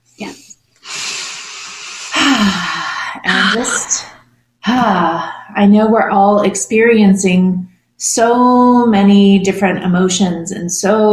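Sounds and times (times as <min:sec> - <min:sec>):
deep inhale-exhale breath: 0:00.3 - 0:04.2
speech: 0:03.5 - 0:04.1, 0:04.8 - 0:11.1.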